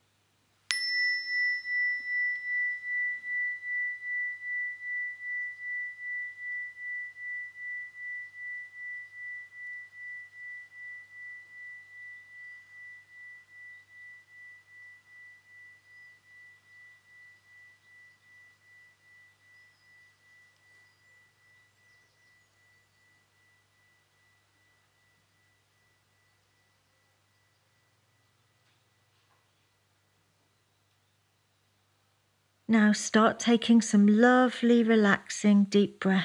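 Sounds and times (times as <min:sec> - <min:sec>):
meditation chime ringing: 0:00.7 - 0:29.2
speech: 0:32.7 - 0:36.2.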